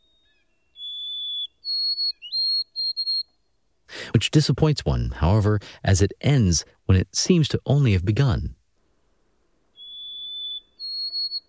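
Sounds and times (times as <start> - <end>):
white-throated sparrow whistled song: 0.0 - 3.5, 9.7 - 11.4
speech: 4.2 - 8.6.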